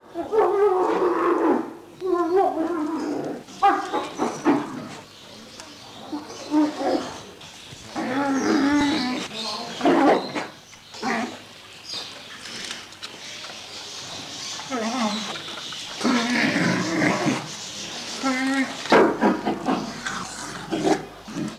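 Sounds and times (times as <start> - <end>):
three Asian black bears calling at feeding: 0.0 - 11.5, 14.5 - 21.5.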